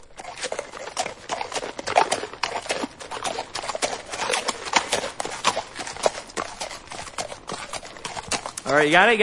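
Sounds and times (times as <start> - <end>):
horse hooves clip-clopping on a hard surface: 0.0 - 9.2
speech: 8.7 - 9.2.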